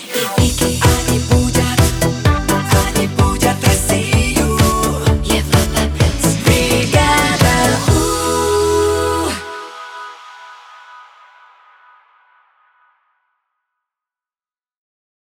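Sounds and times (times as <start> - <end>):
128 bpm station ID jingle: 0.4 - 10.2.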